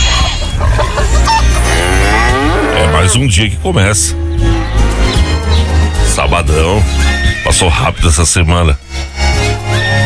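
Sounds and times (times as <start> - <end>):
chickens clucking while fed corn on a farm: 0.0 - 3.2, 4.2 - 7.2
speech: 3.1 - 4.8, 6.2 - 8.9.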